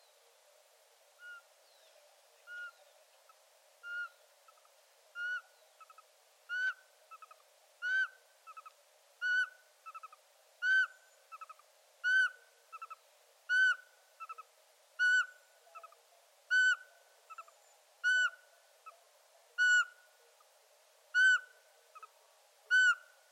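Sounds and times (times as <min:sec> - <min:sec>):
Eurasian pygmy owl calling: 0:01.2 - 0:01.4, 0:02.5 - 0:02.8, 0:03.8 - 0:19.0, 0:19.6 - 0:20.0, 0:21.1 - 0:22.1, 0:22.7 - 0:23.1.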